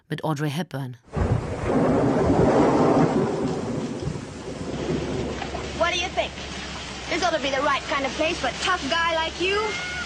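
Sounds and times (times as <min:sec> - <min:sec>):
speech: 0:00.1 - 0:03.7, 0:05.9 - 0:10.0
deep rolling thunder rumble: 0:01.1 - 0:06.1
heavy rainfall hiss: 0:03.2 - 0:10.0.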